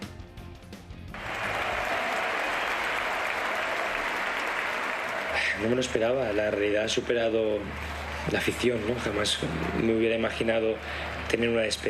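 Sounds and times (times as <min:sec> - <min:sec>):
large stadium crowd applauding and cheering for retiring tennis player: 0:01.1 - 0:11.8
speech: 0:05.6 - 0:11.8.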